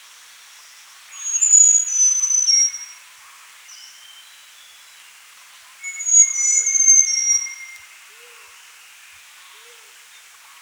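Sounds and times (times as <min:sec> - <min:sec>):
small niltava whistled song: 0:01.2 - 0:03.0, 0:05.8 - 0:07.9.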